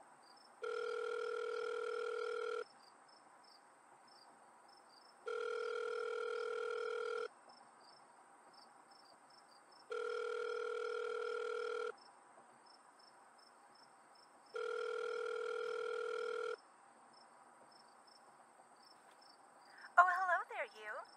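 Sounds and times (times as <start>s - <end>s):
telephone ringback tone during an outgoing call: 0.6s - 2.6s, 5.3s - 7.3s, 9.9s - 11.9s, 14.6s - 16.6s
person speaking: 19.8s - 21.0s.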